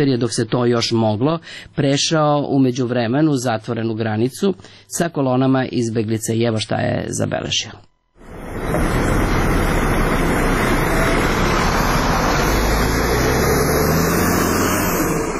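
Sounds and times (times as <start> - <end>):
speech: 0.0 - 7.9
bus engine rumbling as bus pulls in: 8.2 - 15.3
bus road noise: 8.2 - 15.3.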